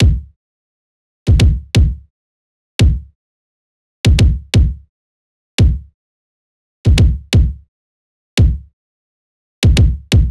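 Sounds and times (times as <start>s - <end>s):
pop kick drum loop: 0.0s - 0.3s, 1.3s - 2.0s, 2.8s - 3.1s, 4.1s - 4.8s, 5.6s - 5.9s, 6.9s - 7.6s, 8.4s - 8.7s, 9.6s - 10.3s.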